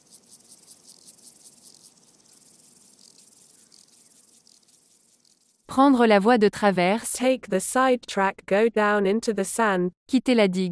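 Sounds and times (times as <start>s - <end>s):
chorus of buzzing insects: 0.0s - 5.7s
speech: 5.7s - 10.6s.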